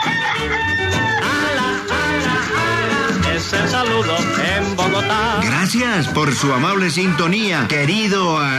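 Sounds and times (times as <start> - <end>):
rooster crowing: 0.0 - 3.2
dense continuous music bed: 0.0 - 7.6
speech: 3.8 - 8.5.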